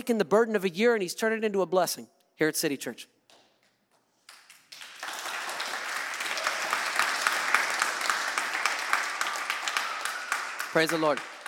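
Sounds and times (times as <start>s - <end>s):
speech: 0.0s - 3.2s, 10.8s - 11.3s
congregation applauding: 4.0s - 11.4s.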